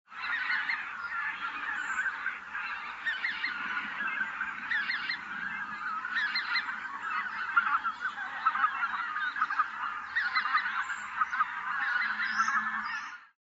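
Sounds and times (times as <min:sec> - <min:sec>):
lesser white-fronted goose: 0:00.1 - 0:13.4.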